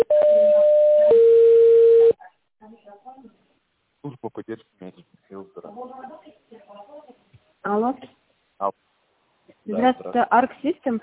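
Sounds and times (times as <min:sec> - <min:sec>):
telephone line tone while a call is transferred to an operator: 0:00.0 - 0:02.2
speech: 0:04.0 - 0:05.0, 0:09.8 - 0:11.0.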